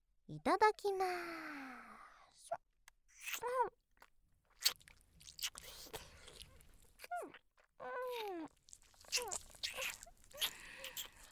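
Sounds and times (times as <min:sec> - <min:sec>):
speech: 0:00.3 - 0:01.7, 0:03.3 - 0:03.8, 0:09.2 - 0:09.5
ASMR ear-licking wet slurps, smacks and clicks: 0:03.1 - 0:11.3.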